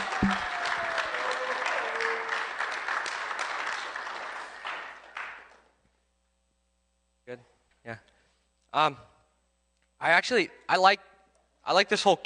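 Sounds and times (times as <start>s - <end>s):
audience applauding: 0.0s - 5.6s
speech: 0.2s - 0.5s, 8.7s - 9.1s, 10.0s - 11.1s, 11.7s - 12.2s.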